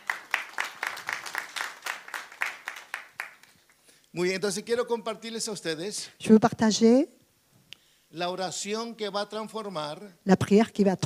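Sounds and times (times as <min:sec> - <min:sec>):
crowd clapping rhythmically at a missionary congress worship service: 0:00.0 - 0:04.0
speech: 0:04.2 - 0:07.2, 0:08.1 - 0:11.0.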